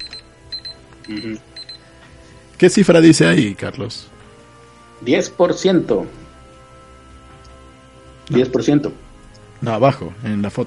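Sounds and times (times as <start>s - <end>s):
electronic alarm effect with short bright beeping tones: 0.0s - 1.9s
speech: 1.1s - 1.6s, 2.6s - 4.2s, 5.0s - 6.2s, 8.3s - 9.0s, 9.6s - 10.6s.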